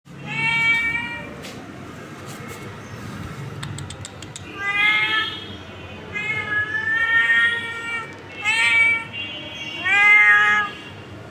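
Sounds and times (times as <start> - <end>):
cat meowing: 0.2 - 1.4, 4.4 - 5.4, 6.1 - 9.2, 9.8 - 10.8
faint clicks: 3.6 - 4.6.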